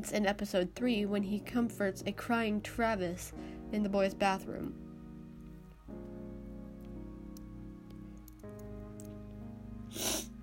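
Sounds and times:
speech: 0.0s - 4.8s
person sniffling: 9.9s - 10.4s.

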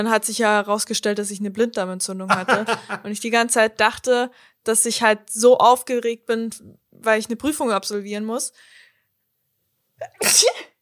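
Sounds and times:
speech: 0.0s - 8.8s, 10.0s - 10.7s
laughter: 2.3s - 3.1s
sneeze: 10.0s - 10.8s.

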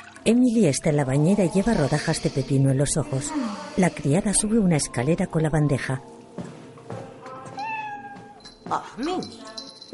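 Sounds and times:
speech: 0.2s - 6.5s, 9.0s - 9.4s
white cat meowing: 7.6s - 8.4s.

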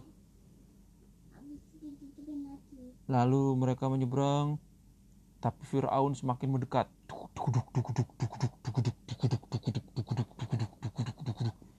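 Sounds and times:
speech: 1.8s - 4.7s, 5.4s - 9.8s
father imitating a horse with his mouth: 7.1s - 11.6s.

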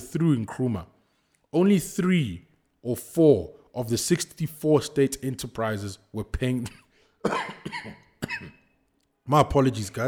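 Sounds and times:
speech: 0.1s - 8.6s, 9.3s - 10.0s
harsh coughs: 6.6s - 8.8s.

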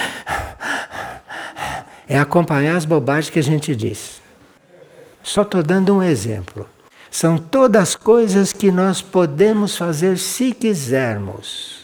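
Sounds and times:
person breathing in and out through the mouth: 0.0s - 2.1s
speech: 2.1s - 4.2s, 5.3s - 11.8s.

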